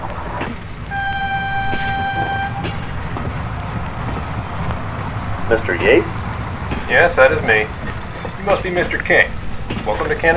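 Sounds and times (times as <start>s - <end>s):
train rumbling as it pulls into a station: 0.0s - 10.3s
sustained train horn or whistle tone: 0.7s - 6.2s
speech: 5.5s - 6.2s, 6.9s - 7.8s, 8.4s - 10.3s.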